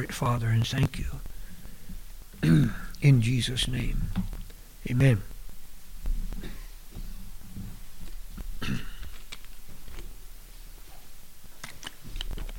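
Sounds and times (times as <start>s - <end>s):
speech: 0.0s - 1.3s, 2.4s - 5.3s, 8.7s - 8.9s
person coughing: 2.4s - 2.9s, 6.4s - 6.8s, 8.6s - 9.1s
throat clearing: 2.4s - 3.0s, 6.4s - 6.8s, 8.6s - 9.1s.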